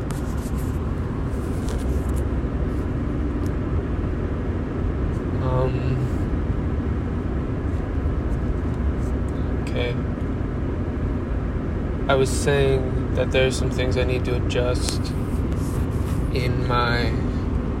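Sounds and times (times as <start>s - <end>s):
road noise inside a moving car: 0.0s - 17.7s
speech: 12.1s - 15.2s, 16.4s - 17.2s.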